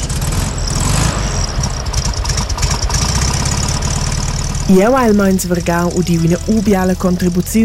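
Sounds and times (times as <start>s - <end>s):
vintage VW Beetle engine idling: 0.0s - 7.6s
speech: 4.7s - 7.6s.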